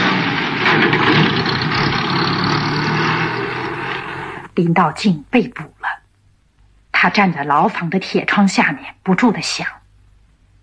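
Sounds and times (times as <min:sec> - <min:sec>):
car engine roaring while driving away: 0:00.0 - 0:04.6
speech: 0:04.6 - 0:05.8, 0:07.0 - 0:09.8.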